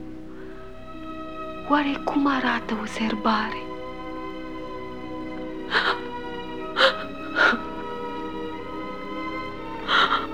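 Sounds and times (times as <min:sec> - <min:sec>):
speech: 0:01.7 - 0:03.7
breathy whimpering sobs: 0:05.7 - 0:06.1, 0:06.7 - 0:07.7, 0:09.9 - 0:10.3.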